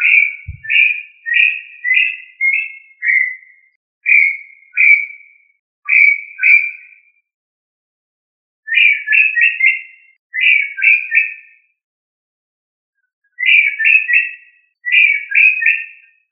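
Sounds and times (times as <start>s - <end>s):
tinamou giving short slurred falling whistles: 0.0s - 5.3s, 5.9s - 7.0s, 8.7s - 11.5s, 13.4s - 16.1s
low thump: 0.5s - 0.8s.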